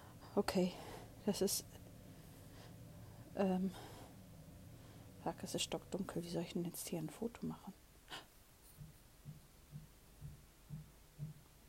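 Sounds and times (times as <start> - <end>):
quiet hiss: 0.0 - 11.6
speech: 0.4 - 1.8, 3.4 - 3.9, 5.2 - 8.2
knocking through a wall: 8.8 - 11.5.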